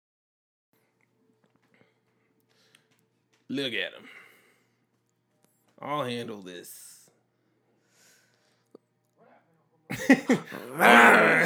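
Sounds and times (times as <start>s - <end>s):
speech: 3.5s - 4.2s, 5.8s - 7.0s, 9.9s - 11.4s
laughter: 9.9s - 11.4s
two dogs growling and snarling: 10.5s - 11.4s.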